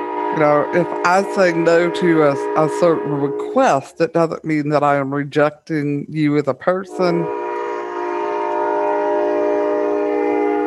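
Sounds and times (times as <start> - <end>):
train horn blaring: 0.0 - 3.8, 6.9 - 10.6
low rumble of passing train: 0.0 - 5.0, 6.7 - 10.6
speech: 0.4 - 7.4.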